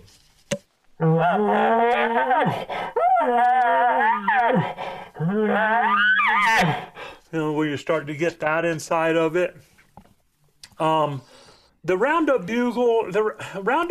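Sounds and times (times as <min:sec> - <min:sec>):
speech: 0:01.0 - 0:06.0, 0:06.6 - 0:09.7, 0:10.8 - 0:13.8
dog moaning and whining in frustration: 0:01.0 - 0:06.9.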